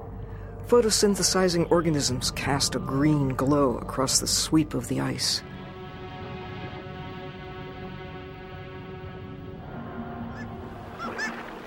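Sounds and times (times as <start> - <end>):
speech: 0.7 - 5.6
Arctic seabird colony of fulmars, guillemots, kittiwakes and ivory gulls calling: 10.3 - 11.6.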